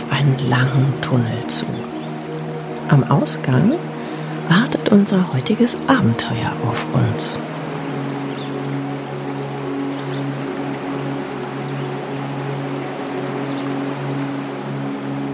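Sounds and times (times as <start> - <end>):
babbling stream water: 0.0 - 15.3
speech: 0.3 - 1.9, 2.9 - 3.9, 4.5 - 7.5.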